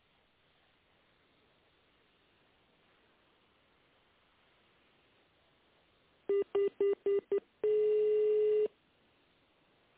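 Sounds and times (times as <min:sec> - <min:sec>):
touch-tone dialing of a telephone extension number: 0:06.3 - 0:08.7.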